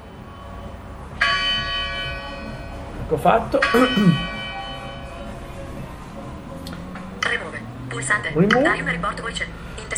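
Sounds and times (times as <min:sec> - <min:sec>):
church bell strike: 0:01.2 - 0:02.8, 0:03.6 - 0:05.2
speech: 0:03.1 - 0:04.3, 0:08.0 - 0:09.7.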